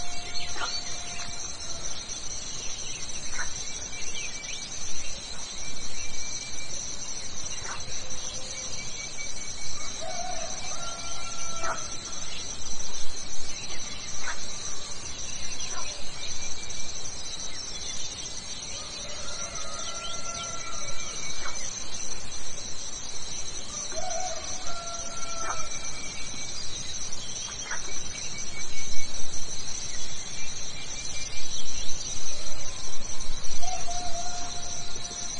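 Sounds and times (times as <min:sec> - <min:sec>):
birdsong in the morning: 0:00.0 - 0:22.2, 0:23.6 - 0:35.3
cicadas in the morning: 0:00.0 - 0:35.3
insects chirring at night: 0:00.0 - 0:35.3.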